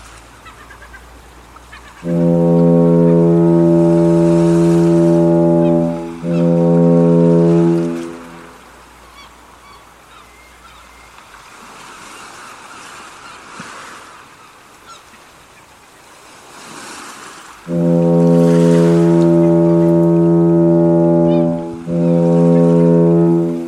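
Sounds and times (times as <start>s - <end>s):
quieter wash and wind-like surf noise: 0.0s - 9.0s, 11.3s - 23.6s
loud deep foghorn blasts: 2.0s - 8.7s, 17.6s - 23.6s.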